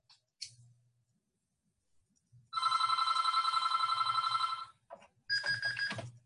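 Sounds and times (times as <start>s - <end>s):
phone ringing with trilling bell tones: 2.6s - 6.2s.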